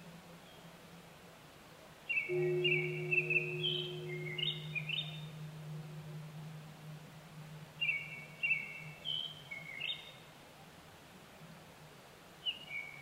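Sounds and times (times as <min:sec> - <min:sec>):
Japanese thrush delivering clusters of clear whistled notes and slurs: 0:02.3 - 0:09.9
low hum: 0:02.3 - 0:09.9.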